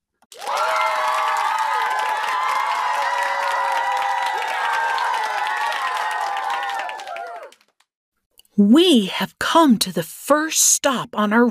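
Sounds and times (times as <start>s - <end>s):
crowd clapping and cheering: 0.3s - 7.9s
excited children shouting and whooping: 0.4s - 7.5s
speech: 8.6s - 11.5s.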